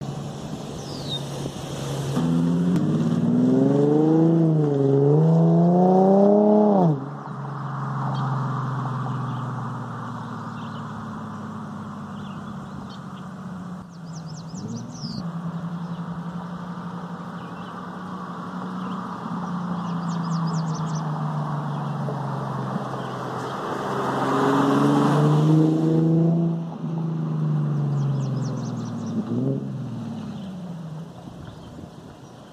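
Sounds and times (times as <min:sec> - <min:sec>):
Infiniti G37xS exhaust with muffler delete and resonator: 0:02.1 - 0:31.0.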